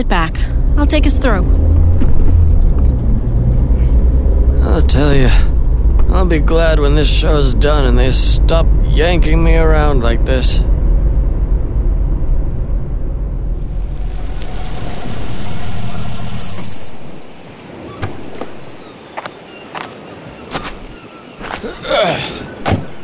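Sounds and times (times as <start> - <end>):
speech: 0.0 - 1.7, 4.7 - 5.5, 6.1 - 10.7
car engine idling: 0.1 - 17.4.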